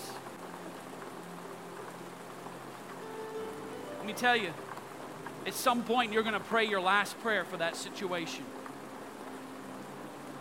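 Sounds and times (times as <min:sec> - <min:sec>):
steady rain falling: 0:00.0 - 0:10.3
speech: 0:04.1 - 0:04.7, 0:05.4 - 0:08.6.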